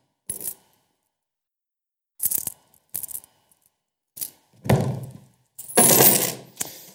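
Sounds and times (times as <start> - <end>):
collection coins clinking and rattling as they are handled: 0.3 - 0.6, 2.2 - 3.3, 5.6 - 6.9.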